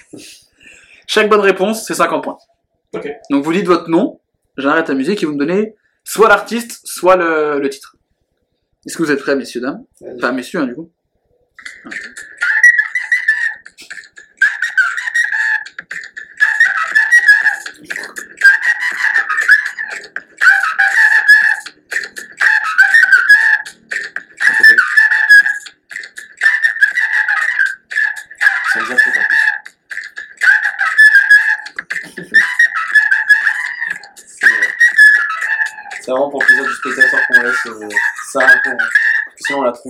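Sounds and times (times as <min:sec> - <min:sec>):
speech: 0:00.0 - 0:00.4, 0:01.1 - 0:08.0, 0:08.8 - 0:11.0, 0:11.6 - 0:12.4
flute playing a pop song melody: 0:11.6 - 0:13.7, 0:14.4 - 0:15.7, 0:16.4 - 0:21.7, 0:22.4 - 0:23.8, 0:24.4 - 0:25.6, 0:26.4 - 0:29.6, 0:30.4 - 0:39.8
laughter: 0:32.0 - 0:32.5.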